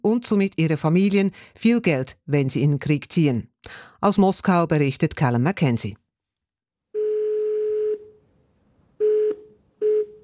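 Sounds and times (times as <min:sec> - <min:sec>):
speech: 0:00.0 - 0:06.0
telephone call tones: 0:06.9 - 0:08.2, 0:09.0 - 0:10.2.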